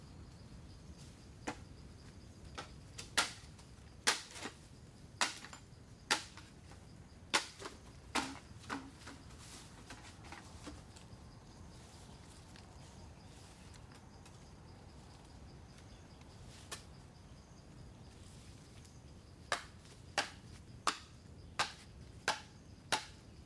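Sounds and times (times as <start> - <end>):
bamboo being split, hacked and shaved in Chiang Mai, Thailand: 2.6 - 4.6, 5.2 - 6.5, 7.3 - 9.2, 19.5 - 23.2.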